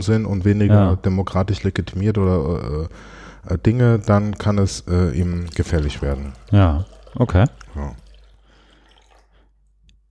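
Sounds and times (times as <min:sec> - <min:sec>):
speech: 0:00.0 - 0:08.0
water pouring into a glass: 0:03.8 - 0:09.7
small drip of water: 0:04.0 - 0:10.0.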